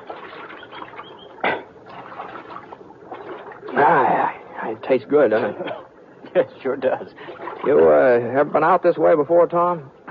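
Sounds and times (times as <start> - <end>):
water splash from riders drinking from a creek: 0.0 - 4.2
creek water trickling: 0.0 - 9.7
speech: 4.8 - 10.0.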